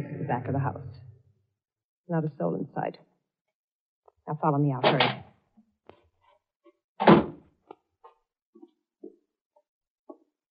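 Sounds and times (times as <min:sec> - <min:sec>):
speech: 0:00.0 - 0:01.0, 0:02.1 - 0:03.1, 0:04.3 - 0:05.3
cellar door at the back of a house closing with a heavy thud: 0:07.0 - 0:07.4.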